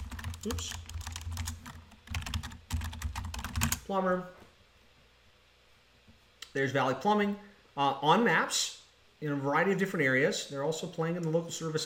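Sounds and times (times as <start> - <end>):
quick typing on a computer keyboard: 0.0 - 3.8
speech: 0.4 - 0.8, 3.9 - 4.4, 6.6 - 11.8.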